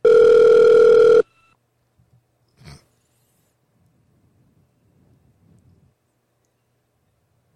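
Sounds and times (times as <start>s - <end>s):
electronic telephone ring tone: 0.0s - 1.6s.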